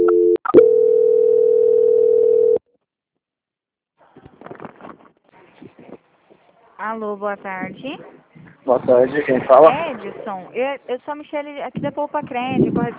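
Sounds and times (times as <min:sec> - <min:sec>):
steady loud continuous telephone call-transfer tone: 0:00.0 - 0:02.6
speech: 0:06.8 - 0:12.9.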